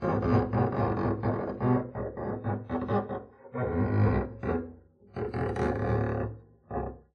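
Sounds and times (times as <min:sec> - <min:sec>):
extra long arco creak noise on double bass: 0:00.0 - 0:07.1.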